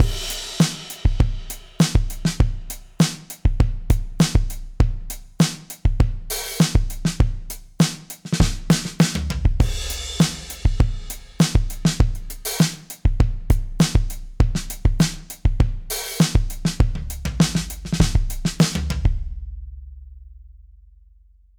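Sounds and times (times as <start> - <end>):
full funk groove drums: 0.0 - 19.6.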